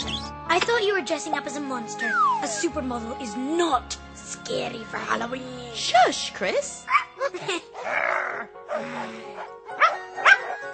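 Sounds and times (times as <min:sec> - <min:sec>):
speech: 0:00.6 - 0:10.3
dog growling, barking and howling: 0:08.7 - 0:10.7
dog yelping: 0:09.8 - 0:10.7.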